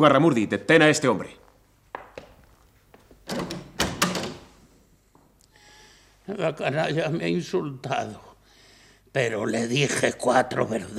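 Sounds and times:
speech: 0.0s - 1.4s, 6.3s - 8.3s, 9.2s - 10.9s
door handle rattling: 3.2s - 4.6s.

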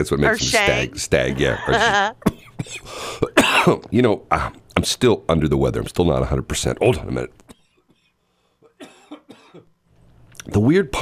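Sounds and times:
speech: 0.0s - 7.5s, 10.4s - 11.0s
harsh raspy coughing fit from a sick person: 2.2s - 4.6s, 6.8s - 9.8s.

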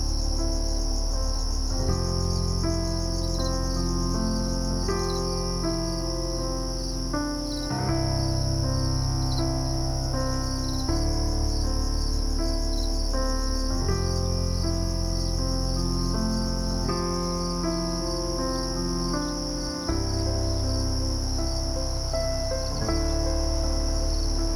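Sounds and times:
low sustained tones: 0.0s - 24.5s
shrill chorus of crickets at night on a cabin porch: 0.0s - 24.5s.

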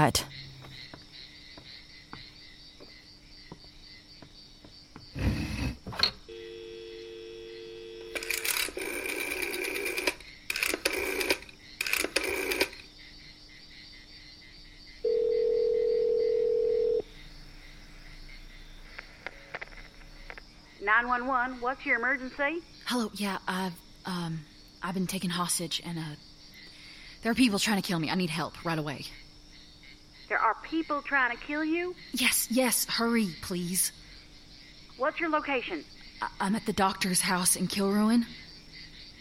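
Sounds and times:
speech: 0.0s - 0.4s, 21.0s - 26.3s, 27.2s - 29.2s, 30.3s - 34.0s, 35.0s - 38.4s
telephone dial tone in an office: 6.3s - 12.8s, 15.1s - 17.0s.

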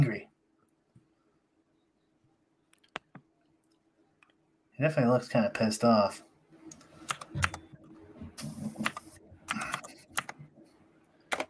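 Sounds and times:
speech: 4.8s - 6.3s, 7.3s - 7.6s
typing on a computer keyboard: 7.1s - 7.6s, 8.8s - 10.4s.

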